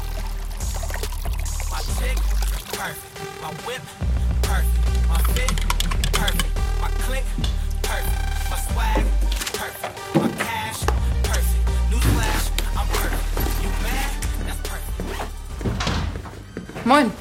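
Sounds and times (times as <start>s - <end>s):
water pouring and splashing into a glass: 0.0s - 2.8s
loud bass-heavy music: 0.0s - 17.2s
speech: 2.8s - 10.9s, 16.9s - 17.2s.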